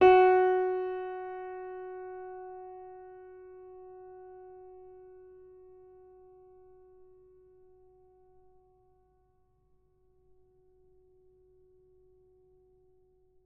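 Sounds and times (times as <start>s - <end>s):
piano note F sharp 5: 0.0s - 4.0s.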